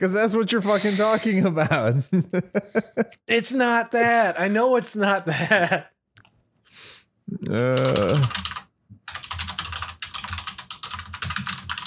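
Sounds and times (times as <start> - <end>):
speech: 0.0 - 5.9, 7.3 - 8.6
fast vigorous typing on a computer keyboard: 7.8 - 11.8.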